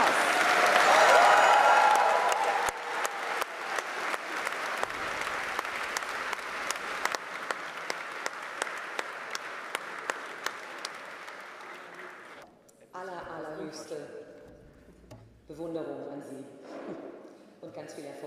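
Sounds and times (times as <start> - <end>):
large audience applause: 0.0 - 12.4.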